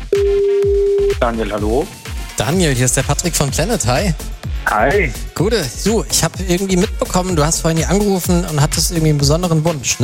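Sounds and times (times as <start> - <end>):
telephone line tone while calling back a listener: 0.1 - 1.2
speech: 1.2 - 10.0.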